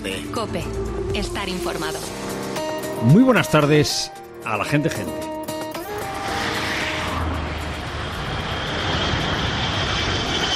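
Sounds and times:
speech: 0.0s - 2.4s, 3.0s - 5.4s
Gulfstream G4 twin-engine business jet engines roaring as it passes: 5.8s - 10.5s.

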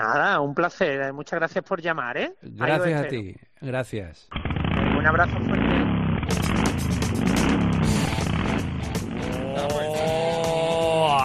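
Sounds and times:
speech: 0.0s - 7.1s
Harley-Davidson motorcycle engine roaring: 4.3s - 10.5s.

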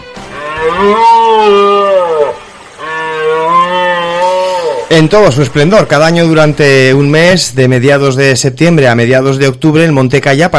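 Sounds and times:
Iberian red deer rutting roar: 0.3s - 6.2s
speech: 0.6s - 1.8s, 4.9s - 10.5s.

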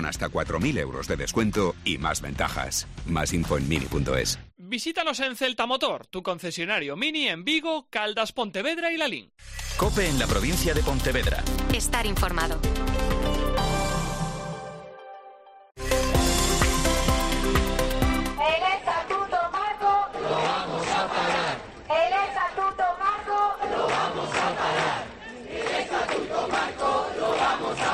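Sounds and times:
music: 0.0s - 4.5s, 9.4s - 19.2s
speech: 0.0s - 13.7s
crowd of doctors chanting in protest outside a hospital in Vigo: 18.5s - 27.9s.

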